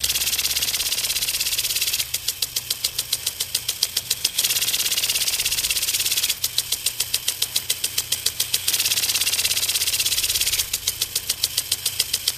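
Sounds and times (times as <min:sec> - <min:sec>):
plastic sprinkler: 0:00.0 - 0:12.3.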